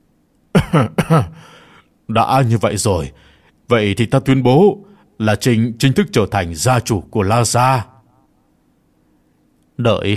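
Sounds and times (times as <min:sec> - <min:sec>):
dry cough: 0:00.5 - 0:01.5
speech: 0:00.6 - 0:07.9, 0:09.8 - 0:10.1.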